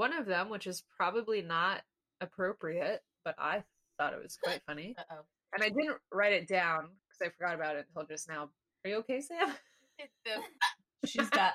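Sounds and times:
speech: 0.0s - 11.5s
woman hiccuping: 4.4s - 4.6s.

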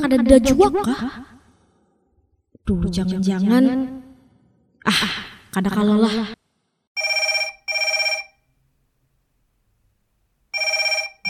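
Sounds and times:
speech: 0.0s - 1.3s, 2.7s - 4.0s, 4.8s - 6.4s
telephone ringing: 7.0s - 8.5s, 10.5s - 11.2s.

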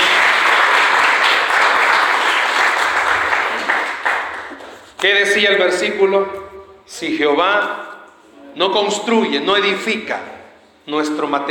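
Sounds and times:
audience applauding: 0.0s - 5.0s
speech: 5.0s - 7.9s, 8.6s - 10.3s, 10.9s - 11.4s.

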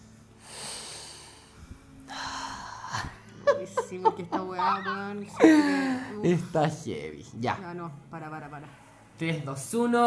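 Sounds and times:
long deep breaths taken to calm anxiety: 0.4s - 3.2s
speech: 3.6s - 10.0s.

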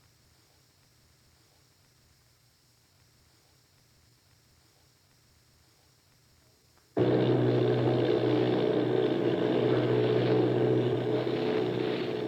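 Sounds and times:
bomber plane propeller engines droning: 7.0s - 12.2s.

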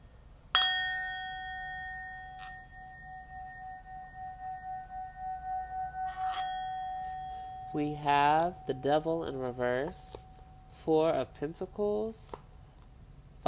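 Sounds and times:
faint light clinks: 0.6s - 4.8s, 5.4s - 10.8s
bell struck and ringing: 0.6s - 11.2s
speech: 7.8s - 12.4s.

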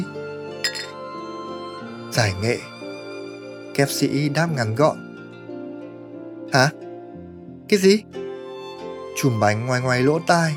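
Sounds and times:
glasses clinking in a toast: 0.6s - 1.0s
speech: 2.1s - 2.7s, 3.8s - 5.0s, 6.5s - 6.8s, 7.7s - 8.2s, 9.2s - 10.5s.

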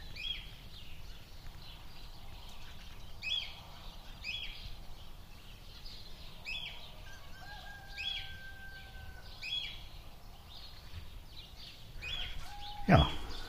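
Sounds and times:
birds chirping outdoors: 0.0s - 13.4s
longer whistled bird notes: 12.0s - 13.4s.

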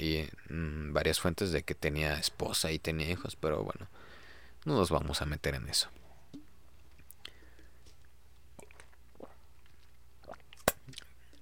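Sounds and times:
speech: 0.0s - 6.0s
gulps or swallows while drinking water: 8.6s - 11.3s
soft wet mouth sounds while drinking: 8.6s - 11.3s.

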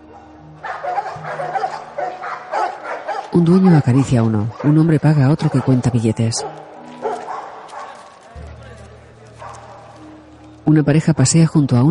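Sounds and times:
dogs yipping and barking at a dog fight in an empty swimming pool: 0.0s - 8.3s, 9.3s - 10.4s
speech: 3.4s - 6.7s, 10.7s - 11.8s.

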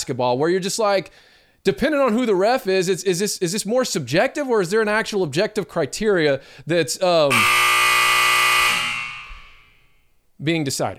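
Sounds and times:
speech: 0.0s - 8.0s, 10.4s - 10.9s
loud electronic buzzer: 7.3s - 10.1s.

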